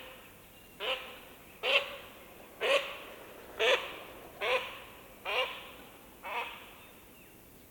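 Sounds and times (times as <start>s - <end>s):
duck flying and passing by: 0.8s - 6.7s.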